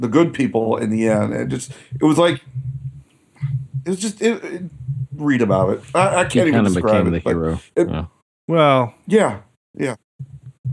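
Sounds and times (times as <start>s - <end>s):
speech: 0.0s - 2.6s, 3.4s - 10.0s
fingers drumming on a microphone: 0.3s - 7.1s.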